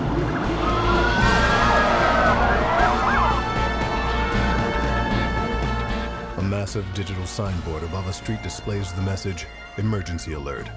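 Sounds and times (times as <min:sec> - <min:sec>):
police vehicle emergency sirens wailing on bridges into Manhattan: 0:00.0 - 0:05.8
heavy rumble of engines and traffic: 0:00.0 - 0:06.0
speech: 0:06.7 - 0:10.7.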